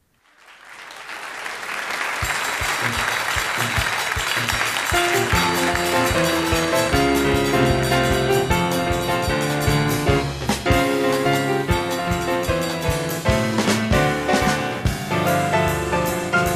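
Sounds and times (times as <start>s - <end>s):
large theatre audience clapping in Rotterdam: 0.0s - 8.5s
band playing a melody: 2.1s - 16.5s
thumping beat: 2.2s - 16.5s.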